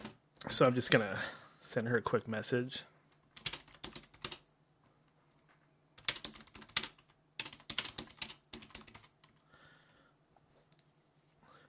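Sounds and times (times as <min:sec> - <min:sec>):
speech: 0:00.5 - 0:02.9
computer keyboard typing: 0:03.4 - 0:04.4, 0:06.0 - 0:09.4.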